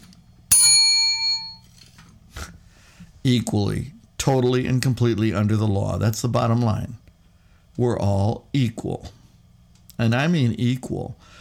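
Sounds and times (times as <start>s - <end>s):
single bright bell strike: 0.5s - 1.7s
speech: 3.2s - 7.0s, 7.8s - 9.2s, 10.0s - 11.4s.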